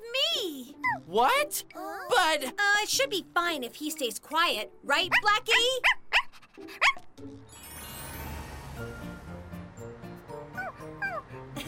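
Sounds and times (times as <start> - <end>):
music: 0.0 - 11.6
puppy whimpering: 0.8 - 2.2, 10.6 - 11.2
speech: 1.1 - 6.0, 6.6 - 7.4
puppy yipping: 5.1 - 7.0, 10.6 - 11.2.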